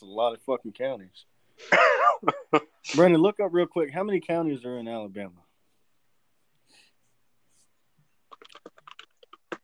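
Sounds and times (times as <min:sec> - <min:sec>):
speech: 0:00.0 - 0:05.4
typing on a computer keyboard: 0:08.3 - 0:09.6.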